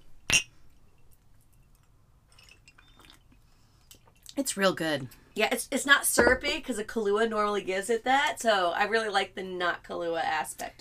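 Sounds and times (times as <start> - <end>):
glasses of vodka with Bailey's clinking in a toast: 2.3 - 3.2
speech: 4.4 - 10.7.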